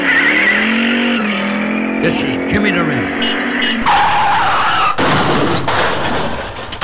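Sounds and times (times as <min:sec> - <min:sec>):
car skidding with tire screech: 0:00.0 - 0:06.8
speech: 0:02.0 - 0:04.0
rough noisy rumbling: 0:02.0 - 0:06.8
car hitting a person: 0:03.2 - 0:06.8.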